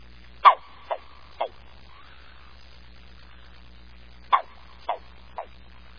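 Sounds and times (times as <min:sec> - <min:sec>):
green frog calling: 0:00.4 - 0:02.5, 0:04.3 - 0:05.6.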